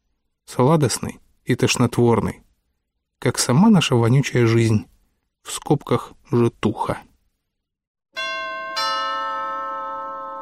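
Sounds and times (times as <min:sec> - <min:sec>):
speech: 0:00.5 - 0:02.4, 0:03.2 - 0:07.1
two-tone doorbell chime at an apartment door: 0:08.2 - 0:10.4.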